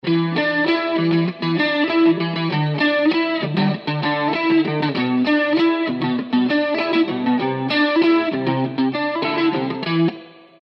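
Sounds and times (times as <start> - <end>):
electric guitar: 0.0 - 10.6.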